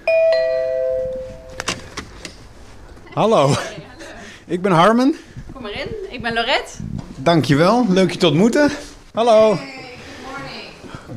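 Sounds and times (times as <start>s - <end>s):
doorbell chime ringing at an office in Amsterdam: 0.0s - 1.6s
sharp clicks and knocks: 1.5s - 2.5s
speech: 3.2s - 3.8s, 4.5s - 9.7s.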